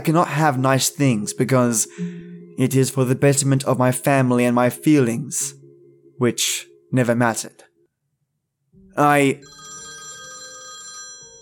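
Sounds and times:
speech: 0.0 - 5.6, 6.2 - 7.7, 9.0 - 9.7
phone ringing with electronic tone: 9.4 - 11.4.

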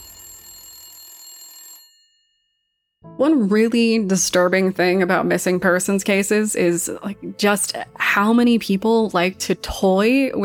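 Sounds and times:
telephone ringing with a metallic bell tone: 0.0 - 2.2
speech: 3.2 - 10.4.

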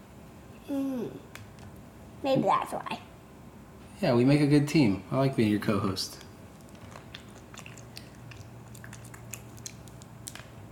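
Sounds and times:
low steady hum: 0.0 - 10.7
speech: 2.2 - 3.1, 4.0 - 6.2
wet crunching and chewing of raw broccoli: 6.5 - 10.6.

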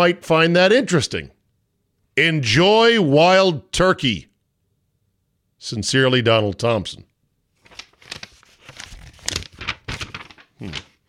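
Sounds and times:
speech: 0.0 - 1.4, 2.2 - 4.3, 5.6 - 7.1, 10.6 - 10.9
paper letter rustling and crinkling: 7.6 - 11.0.

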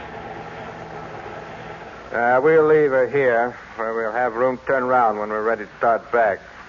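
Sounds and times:
car engine idling after being pulled off a steep road to park: 0.0 - 3.8
speech: 2.1 - 6.5.

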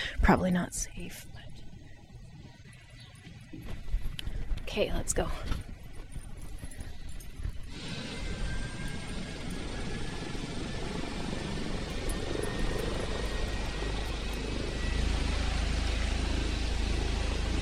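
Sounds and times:
speech: 0.2 - 1.5, 4.7 - 5.7
heavy helicopter rotor thumping: 3.3 - 17.6
helicopter engine whine during takeoff: 5.6 - 17.6.

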